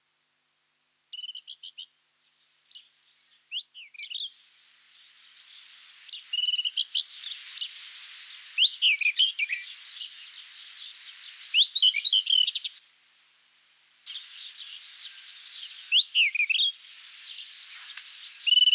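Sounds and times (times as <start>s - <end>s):
rufous-tailed scrub robin Cercotrichas galactotes singing: 1.1s - 2.0s, 2.7s - 4.4s, 5.5s - 12.8s, 14.1s - 18.7s.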